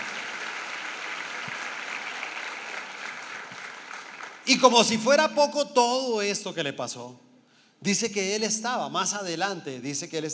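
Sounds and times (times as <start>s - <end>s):
crowd applauding during a sermon: 0.0s - 4.9s
speech: 4.5s - 10.3s.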